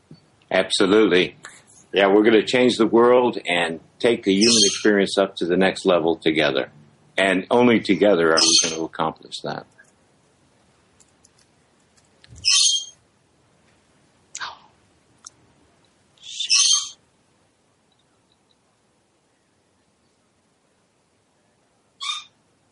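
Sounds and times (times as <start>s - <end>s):
speech: 0.5s - 9.8s
harsh screechy bird calls: 4.4s - 5.0s, 8.4s - 8.9s, 12.4s - 13.0s, 16.2s - 17.0s, 22.0s - 22.4s.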